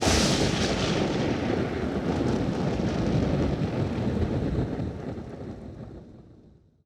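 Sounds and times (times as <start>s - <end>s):
lightning strike: 0.0s - 5.4s
rain: 0.0s - 6.6s
thunder: 0.0s - 6.7s.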